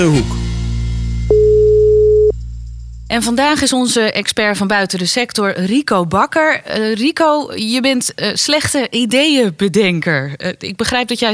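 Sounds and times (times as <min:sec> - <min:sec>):
speech: 0:00.0 - 0:00.4, 0:03.1 - 0:11.3
constant low hum: 0:00.3 - 0:05.5
telephone line beep as a call is placed: 0:01.3 - 0:02.4.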